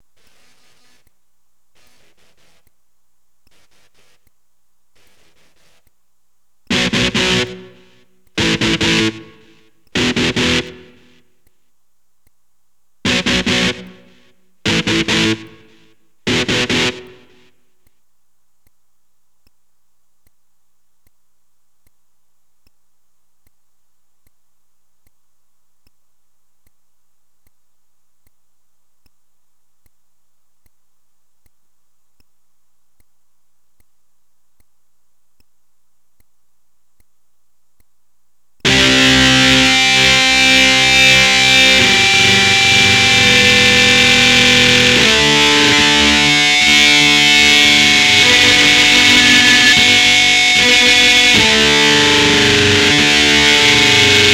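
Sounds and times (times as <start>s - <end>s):
electric guitar: 6.7s - 11.2s, 13.1s - 17.5s, 38.7s - 54.3s.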